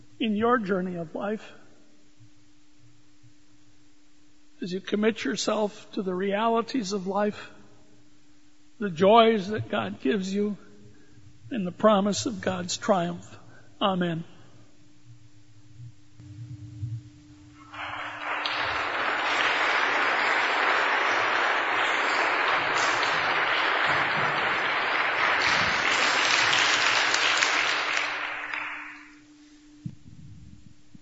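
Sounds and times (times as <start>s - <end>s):
person preaching: 0.2s - 1.6s, 4.6s - 7.6s, 8.8s - 10.6s, 11.5s - 14.5s
speech: 0.2s - 1.6s, 4.6s - 7.6s, 8.8s - 10.6s, 11.5s - 14.3s
audience applauding after a sermon: 17.6s - 29.2s.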